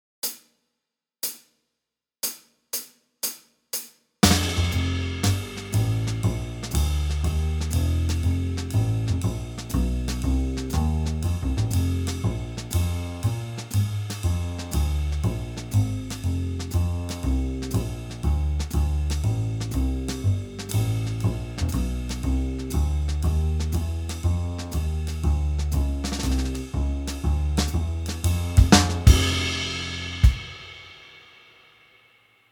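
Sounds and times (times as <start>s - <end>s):
blues piano: 4.2s - 29.7s.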